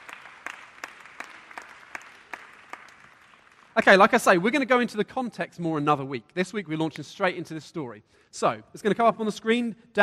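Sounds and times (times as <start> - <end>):
audience applause: 0.0 - 3.9
speech: 3.8 - 10.0.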